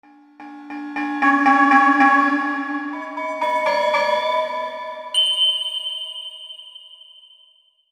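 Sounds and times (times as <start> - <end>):
tam-tams on a Roland V-Synth: 0.3 - 7.4.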